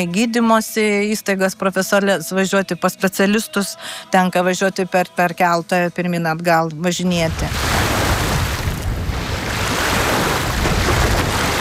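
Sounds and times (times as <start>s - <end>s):
speech: 0.0s - 7.8s
rushing wind noise: 7.2s - 11.6s
waves of the Curonian Lagoon breaking on the shore at Pervalka: 7.2s - 11.6s.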